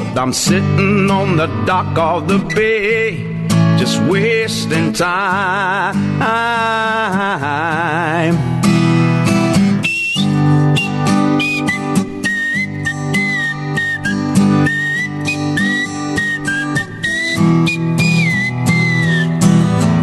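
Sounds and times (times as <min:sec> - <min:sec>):
speech: 0:00.1 - 0:09.1
person whistling a tune through teeth: 0:09.7 - 0:19.9.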